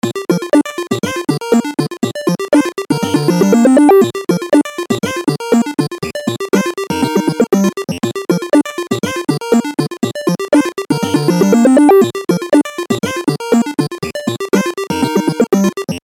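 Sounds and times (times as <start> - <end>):
8-bit ringtone: 0.1 - 16.0.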